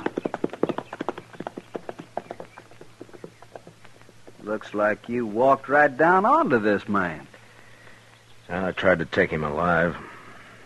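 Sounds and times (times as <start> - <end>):
horse hooves clip-clopping: 0.0 - 5.7
speech: 4.5 - 7.3, 8.5 - 10.1.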